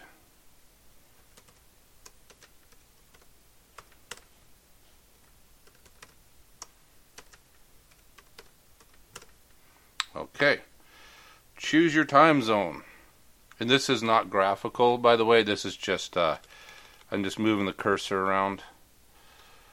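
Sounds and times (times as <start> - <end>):
quiet hum: 0.0 - 19.7
typing on a computer keyboard: 1.3 - 4.3, 5.2 - 9.4
speech: 10.4 - 10.7, 11.7 - 12.9, 13.6 - 18.7.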